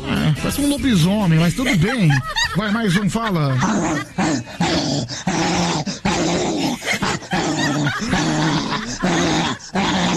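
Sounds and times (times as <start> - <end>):
laughter: 0.1 - 4.5, 6.6 - 9.6
speech: 0.4 - 5.4
female dog barking and growling ferociously: 3.5 - 10.1.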